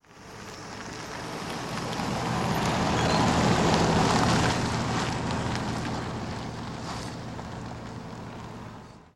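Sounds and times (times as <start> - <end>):
car tires on gravel: 0.0 - 9.1.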